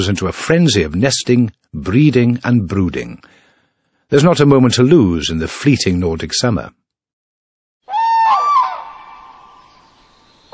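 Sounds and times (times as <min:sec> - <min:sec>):
speech: 0:00.0 - 0:03.4, 0:04.1 - 0:06.8
cranes calling during courting displays on wetlands in early spring: 0:07.9 - 0:10.5.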